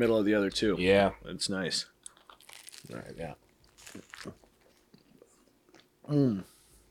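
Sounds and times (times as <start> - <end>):
speech: 0.0 - 2.0, 2.8 - 4.4, 6.1 - 6.5
crunchy bites and chewing of a pizza crust: 2.0 - 5.9.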